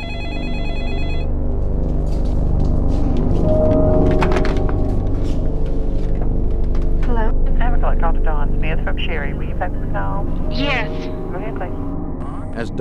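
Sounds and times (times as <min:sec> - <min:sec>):
telephone ringing: 0:00.0 - 0:01.4
dense steady low rumble: 0:01.5 - 0:12.7.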